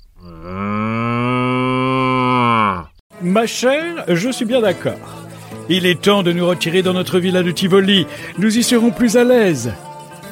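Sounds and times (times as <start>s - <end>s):
cow mooing: 0.2s - 2.9s
speech: 3.2s - 9.9s.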